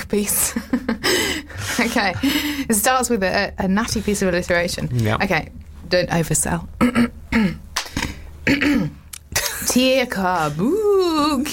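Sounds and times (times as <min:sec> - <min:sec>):
speech: 0:00.1 - 0:07.6, 0:09.8 - 0:11.5
person clearing throat: 0:06.8 - 0:07.6, 0:08.4 - 0:09.7.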